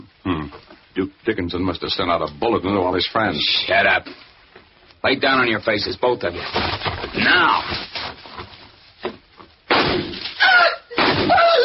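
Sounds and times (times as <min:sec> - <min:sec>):
speech: 0:00.5 - 0:04.3, 0:05.0 - 0:07.8
gunshots fired into car tires: 0:09.7 - 0:10.4.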